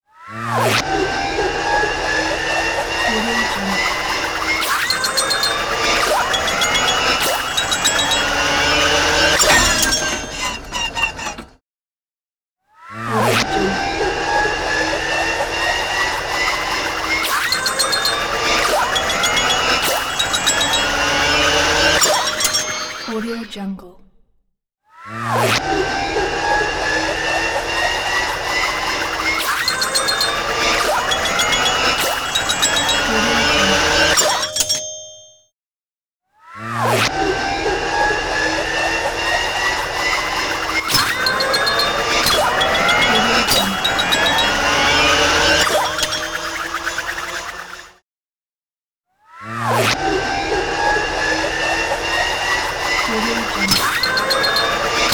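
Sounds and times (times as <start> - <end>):
comic mayhem motor winding up: 0.3 - 11.6, 12.9 - 23.5, 25.1 - 35.3, 36.6 - 48.0, 49.4 - 55.1.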